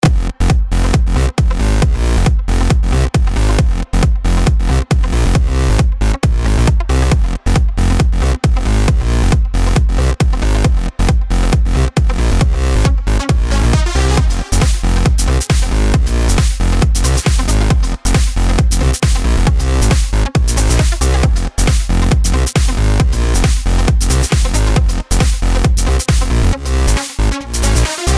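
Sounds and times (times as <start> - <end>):
filthy distorted bass: 0.0 - 28.1.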